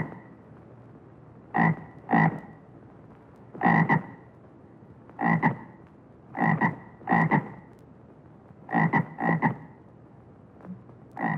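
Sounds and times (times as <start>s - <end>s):
bullfrog croaking in quick double pulses: 1.5s - 2.5s, 3.6s - 4.2s, 5.2s - 5.7s, 6.4s - 7.6s, 8.7s - 9.7s, 11.2s - 11.3s.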